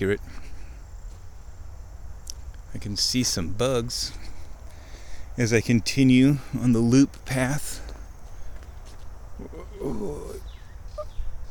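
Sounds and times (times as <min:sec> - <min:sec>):
speech: 0:00.0 - 0:00.5, 0:02.7 - 0:04.3, 0:05.4 - 0:07.8
steady rustling noise: 0:00.0 - 0:11.4
odd warbling bird calls on an overgrown hill: 0:08.3 - 0:11.4.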